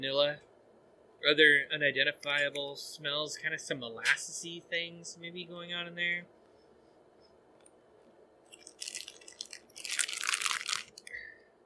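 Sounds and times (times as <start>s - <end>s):
speech: 0.0s - 0.5s, 1.2s - 6.4s
crunching of a peanut butter sandwich cookie: 8.5s - 11.2s.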